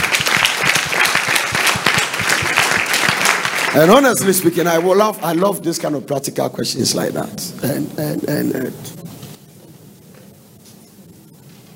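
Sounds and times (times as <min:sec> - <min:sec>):
audience clapping: 0:00.0 - 0:06.0
speech: 0:03.8 - 0:09.1.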